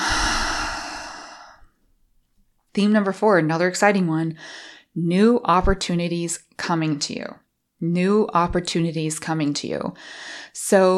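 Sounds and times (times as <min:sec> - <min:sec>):
slow deep breath and big exhale: 0:00.0 - 0:01.7
speech: 0:02.8 - 0:10.9.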